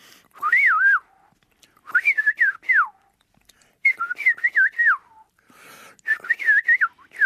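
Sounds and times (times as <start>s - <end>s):
person whistling an imitation of a golden oriole call: 0.4s - 1.2s, 1.9s - 3.0s, 3.9s - 5.3s, 6.1s - 7.2s.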